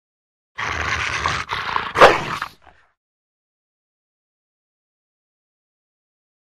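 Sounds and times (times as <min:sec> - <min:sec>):
Rottweiler growling: 0:00.6 - 0:02.8
Rottweiler barking: 0:01.9 - 0:02.6.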